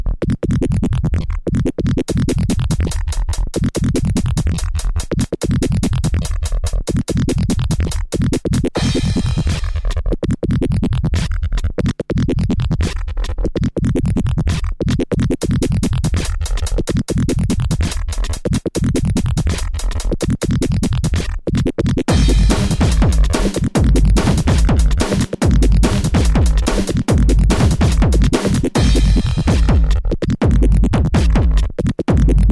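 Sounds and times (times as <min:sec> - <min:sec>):
external drums: 0:00.2 - 0:32.5
Casio VZ-1 synthesizer sounds: 0:22.1 - 0:30.0.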